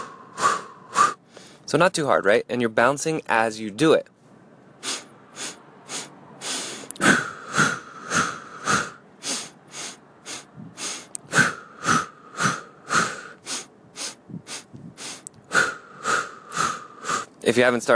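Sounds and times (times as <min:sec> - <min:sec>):
breathing exercise with sharp inhales through nose and exhales out mouth: 0:00.0 - 0:01.7, 0:04.8 - 0:17.4
speech: 0:01.7 - 0:04.1, 0:17.6 - 0:17.9.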